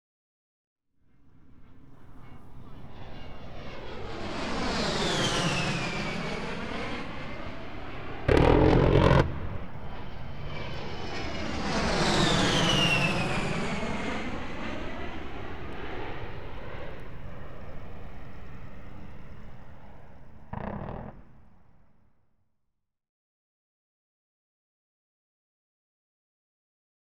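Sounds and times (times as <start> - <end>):
USAF Fairchild A10 Thunderbolt aircraft in warfare: 1.1 - 22.0.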